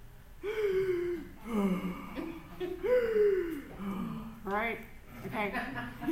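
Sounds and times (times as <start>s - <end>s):
person imitating heavy forceful monster-like breathing: 0.4s - 4.5s
laughter: 1.5s - 3.9s, 5.2s - 6.1s
speech: 4.5s - 6.0s.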